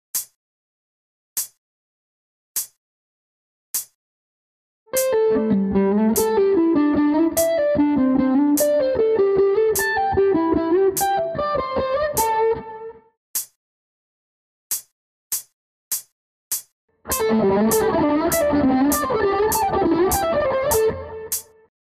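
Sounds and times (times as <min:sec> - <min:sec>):
pentatonic slide guitar: 0:04.9 - 0:13.0, 0:17.1 - 0:21.4.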